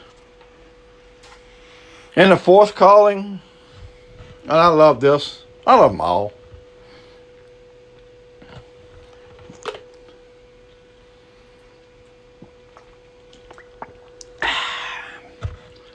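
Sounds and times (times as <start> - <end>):
steady low hum: 0.0 - 15.9
speech: 2.2 - 3.5, 4.5 - 6.4
preacher sipping and swallowing water during a sermon: 12.4 - 15.9.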